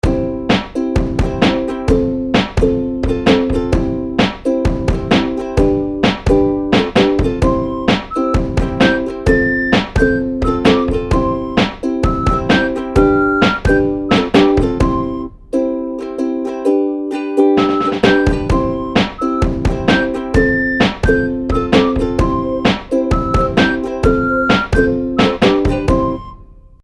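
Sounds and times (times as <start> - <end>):
ukulele: 0.0 - 26.8.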